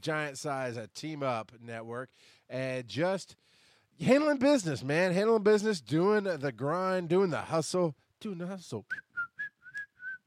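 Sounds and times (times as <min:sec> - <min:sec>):
speech: 0:00.0 - 0:09.1
person whistling: 0:08.9 - 0:10.2.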